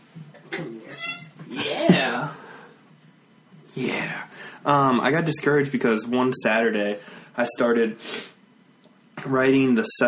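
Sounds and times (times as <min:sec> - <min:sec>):
cat meowing: 0:00.8 - 0:01.4
speech: 0:03.8 - 0:08.3, 0:09.2 - 0:10.0.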